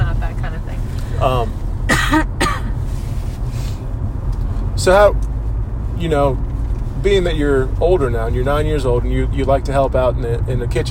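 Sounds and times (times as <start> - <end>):
low hum: 0.0 - 10.8
speech: 1.2 - 2.2, 4.8 - 5.3, 6.0 - 10.8
sharp coughs: 1.9 - 2.8.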